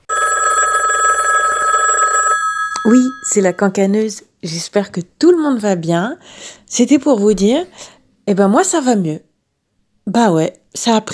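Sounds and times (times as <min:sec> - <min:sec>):
telephone ringing with a bright trilling electronic tone: 0:00.0 - 0:03.8
speech: 0:02.8 - 0:09.3, 0:10.1 - 0:11.1.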